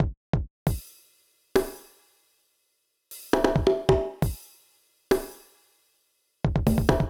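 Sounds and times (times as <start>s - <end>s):
kick drums: 0.0s - 0.8s, 3.5s - 4.4s, 6.4s - 7.0s
percussion beat: 0.0s - 2.2s, 3.1s - 5.7s, 6.4s - 7.0s.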